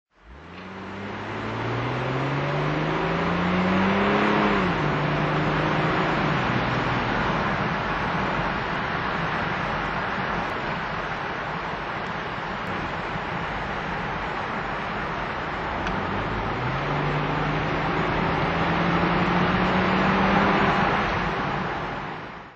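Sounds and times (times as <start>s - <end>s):
Jaguar XJS 4L convertible driving: 0.1s - 22.5s.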